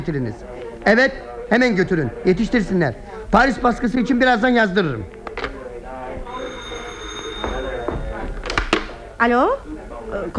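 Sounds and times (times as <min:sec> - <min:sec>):
speech: 0:00.0 - 0:05.2, 0:09.2 - 0:10.3
indistinct voices in a busy room: 0:00.0 - 0:10.3
telephone bell ringing: 0:06.3 - 0:08.6.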